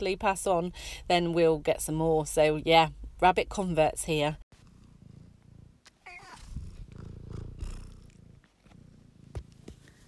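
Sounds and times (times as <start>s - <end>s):
speech: 0.0s - 4.4s
pet cat purring: 4.5s - 10.0s.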